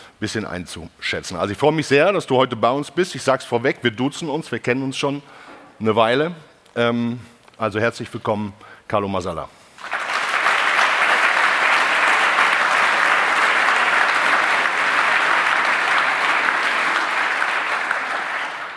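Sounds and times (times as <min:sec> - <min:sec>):
speech: 0:00.2 - 0:09.6
audience applause: 0:09.8 - 0:18.7.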